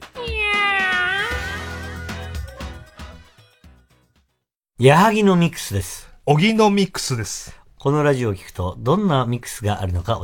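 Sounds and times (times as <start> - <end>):
cat meowing: 0.0 - 1.8
speech: 4.8 - 10.2.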